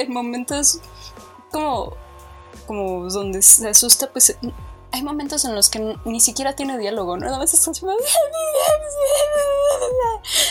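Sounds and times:
speech: 0.0s - 10.4s
person imitating whimpering and crying with breathy sobbing gasps: 8.0s - 10.4s.

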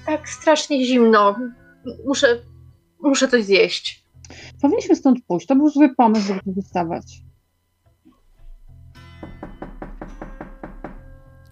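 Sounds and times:
speech: 0.2s - 7.3s
firm knocking on a door: 9.2s - 11.2s.

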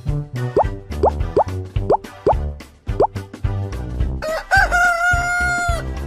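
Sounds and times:
bouncy musical backing: 0.2s - 3.5s
rooster crowing: 4.2s - 5.9s.

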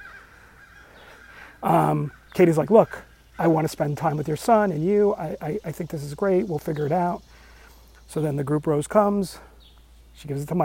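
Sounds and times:
crow cawing: 0.0s - 3.5s
low outdoor noise: 0.0s - 10.6s
speech: 1.6s - 7.4s, 8.1s - 9.5s, 10.2s - 10.6s.

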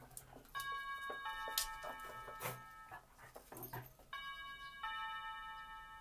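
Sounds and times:
doorbell chiming with sustained bell tones: 0.6s - 3.0s, 4.1s - 5.9s.

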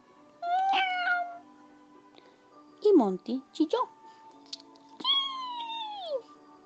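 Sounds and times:
cat meowing at night by a large tree: 0.4s - 1.4s, 5.0s - 6.3s
speech: 2.8s - 4.0s.

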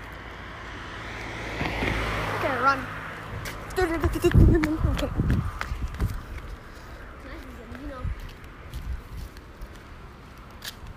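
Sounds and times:
car driving past: 0.2s - 3.8s
speech: 2.7s - 2.9s, 3.8s - 6.2s.

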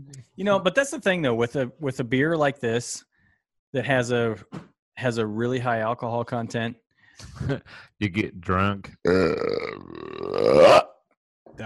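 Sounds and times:
speech: 0.4s - 3.1s, 3.7s - 10.9s
long loud rough burp: 9.0s - 11.0s.

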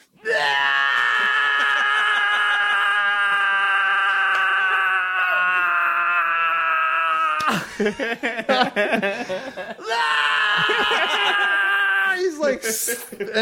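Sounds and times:
person imitating screaming while vomiting: 0.2s - 8.1s, 9.8s - 12.4s
laughter: 7.4s - 13.4s
speech: 7.8s - 13.4s.

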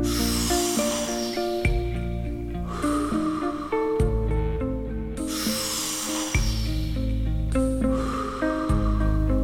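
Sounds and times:
long deep breathing inhales and exhales: 0.0s - 9.4s
steady sustained musical drone: 0.0s - 9.4s.

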